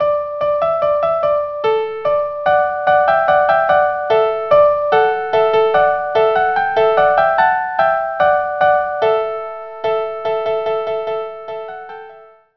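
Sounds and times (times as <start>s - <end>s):
minuets and tambourin music: 0.0s - 12.4s.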